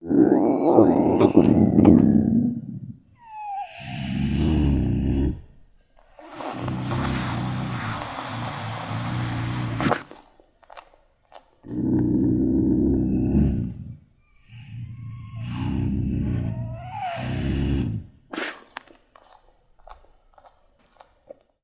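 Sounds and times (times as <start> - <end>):
bobcat snarl low growl: 0.0 - 5.5, 6.2 - 10.1, 11.6 - 18.7.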